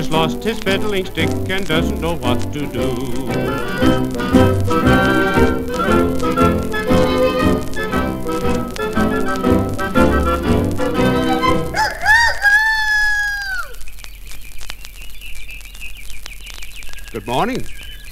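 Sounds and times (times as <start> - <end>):
full busy music: 0.0 - 11.8
speech: 0.1 - 5.1, 17.3 - 17.8
bright swooping bird-like morning chirps and whistles: 11.4 - 18.0.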